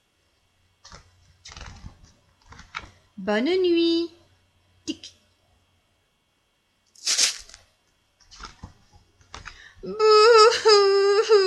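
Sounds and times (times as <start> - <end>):
speech: 3.2 - 4.2
person crying: 9.8 - 11.4.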